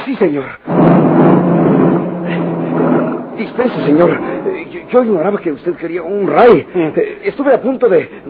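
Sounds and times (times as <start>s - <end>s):
speech: 0.1s - 1.3s, 3.4s - 8.2s
car engine accelerating: 0.7s - 6.9s.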